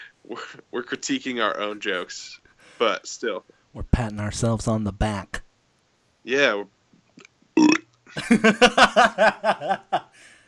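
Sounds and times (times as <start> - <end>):
speech: 0.2 - 5.4, 6.2 - 6.8, 8.1 - 10.1
loud burp: 7.6 - 7.9
laughter: 8.2 - 10.1.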